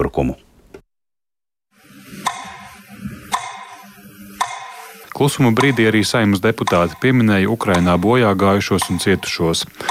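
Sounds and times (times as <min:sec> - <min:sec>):
speech: 0:00.1 - 0:00.5, 0:05.2 - 0:09.8
clock ticking: 0:02.3 - 0:03.8, 0:04.4 - 0:09.8.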